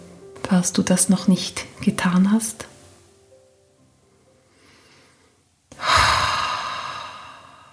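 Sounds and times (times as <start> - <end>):
speech: 0.5 - 2.7
deep breath during a guided relaxation exercise: 4.1 - 7.7.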